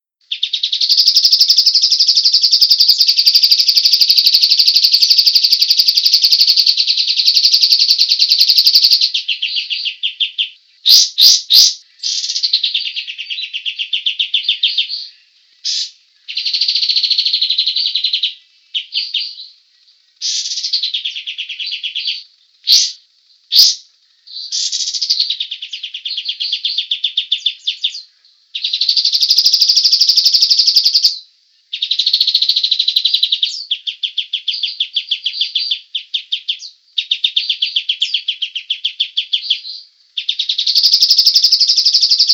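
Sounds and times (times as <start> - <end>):
cotton bird chirping densely: 0.2 - 42.3.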